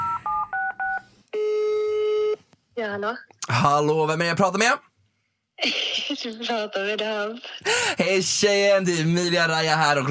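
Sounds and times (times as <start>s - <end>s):
long steady phone ringing tone on the line: 0.0s - 2.4s
phone keypad tones dialing a number: 0.0s - 2.4s
speech: 2.8s - 4.9s, 5.6s - 10.0s.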